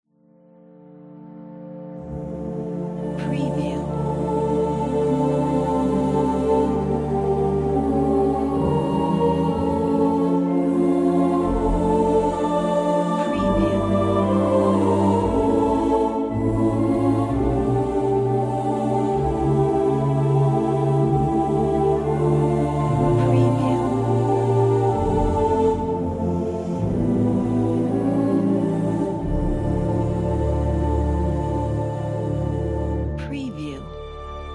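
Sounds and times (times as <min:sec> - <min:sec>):
angels choir singing: 0:02.0 - 0:34.5.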